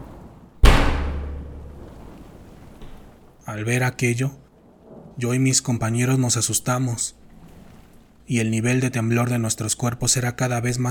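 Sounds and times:
pointer thrown crashing against a door: 0.6 - 3.2
speech: 3.4 - 4.4, 5.2 - 7.3, 8.3 - 10.8.

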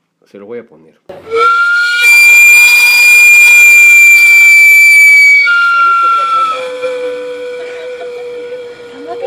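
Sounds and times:
speech: 0.2 - 1.6
steam whistle of sweet potato vendor's cart shrieking: 1.2 - 9.2.

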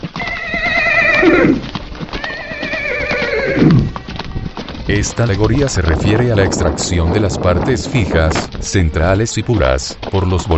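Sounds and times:
horse hooves clip-clopping: 0.0 - 10.5
horse whinnying loudly: 0.2 - 4.6
speech: 4.9 - 10.5.

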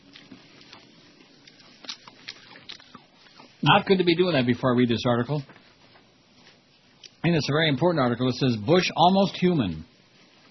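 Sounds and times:
someone chewing crispy bacon: 0.0 - 3.7
speech: 3.6 - 5.6, 7.3 - 9.9.

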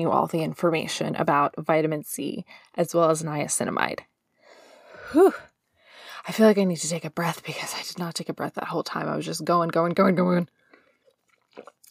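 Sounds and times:
speech: 0.0 - 4.1, 5.1 - 5.5, 6.2 - 10.6
slurping sip of coffee from a mug: 10.6 - 11.8.

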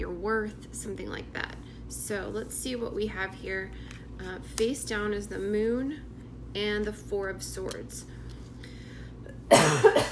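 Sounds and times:
speech: 0.0 - 8.2
harsh dry cough: 9.5 - 10.0.

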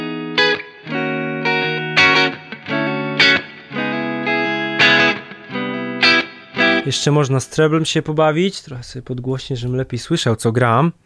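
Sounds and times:
distorted electric guitar through an amp playing sustained chords: 0.0 - 6.9
speech: 6.8 - 11.0.

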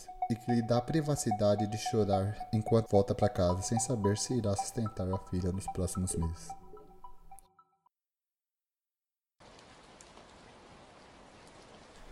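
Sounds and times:
brief tonal musical passage: 0.0 - 7.6
speech: 0.3 - 6.6
steady dense rain falling outside: 9.4 - 12.0.

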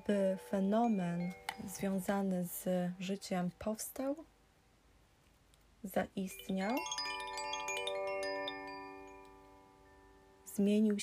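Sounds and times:
small bells jingling: 0.0 - 4.1, 6.2 - 11.0
speech: 0.1 - 4.3, 5.8 - 7.0, 10.6 - 11.0.

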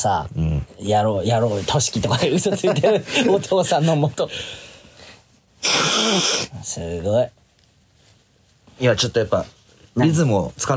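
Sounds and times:
speech: 0.0 - 4.6, 5.6 - 7.4, 8.8 - 10.7
soft airy nose sniff: 5.6 - 6.6.

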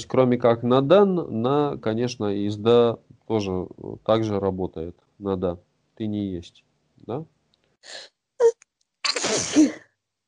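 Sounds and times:
speech: 0.0 - 8.6
person sneezing: 9.0 - 9.9.

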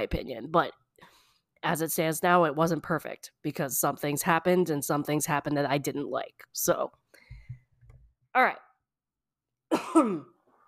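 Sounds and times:
speech: 0.0 - 0.8, 1.6 - 7.1, 8.4 - 8.7, 9.7 - 10.3
single short throaty cough: 9.7 - 10.4.

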